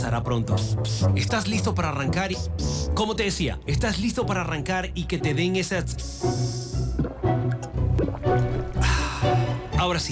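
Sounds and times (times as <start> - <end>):
speech: 0.1 - 6.7, 9.8 - 10.0
bubbly gurgling and splashing of sparkling water: 6.7 - 9.6.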